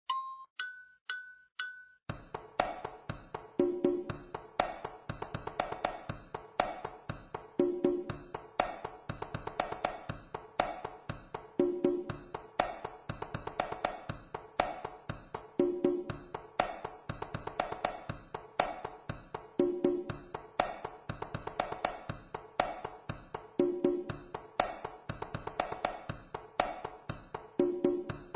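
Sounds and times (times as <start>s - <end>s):
congas played with the left hand: 2.1s - 28.3s.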